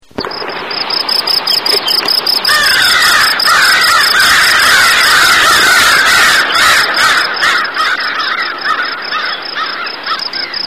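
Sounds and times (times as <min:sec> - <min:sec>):
crickets chirping: 0:00.0 - 0:10.6
common crows cawing: 0:02.3 - 0:10.6.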